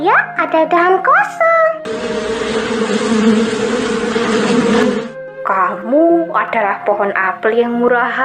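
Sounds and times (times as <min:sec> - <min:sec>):
speech: 0:00.2 - 0:01.5, 0:06.3 - 0:08.2
swarm of bees buzzing: 0:01.9 - 0:05.2.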